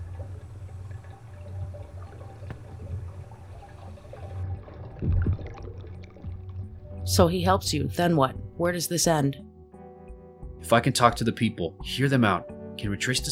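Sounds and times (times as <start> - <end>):
water splashing as people swim: 0.0 - 8.7
low rumble: 0.0 - 9.2
speech: 7.1 - 9.4, 10.7 - 13.3.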